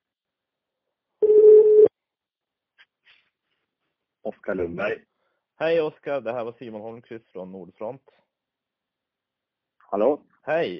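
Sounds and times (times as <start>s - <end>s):
telephone dial tone before a phone call: 1.2s - 1.9s
speech: 4.2s - 8.2s, 9.9s - 10.7s.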